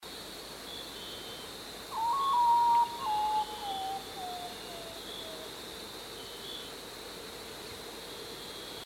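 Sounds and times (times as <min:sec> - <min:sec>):
Nyctibius griseus common potoo calling: 0:01.9 - 0:05.5.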